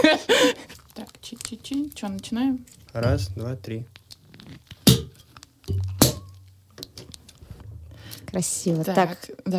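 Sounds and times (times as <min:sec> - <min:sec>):
speech: 0:00.0 - 0:00.7, 0:01.7 - 0:04.0, 0:08.3 - 0:09.5
sparkling wine bottle being opened with a sharp pop: 0:04.4 - 0:07.1.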